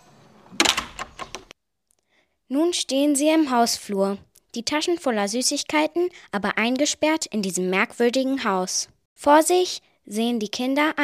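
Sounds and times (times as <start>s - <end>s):
house front door falling shut: 0.4s - 1.6s
rattles and clicks: 0.6s - 1.6s
speech: 2.5s - 11.0s.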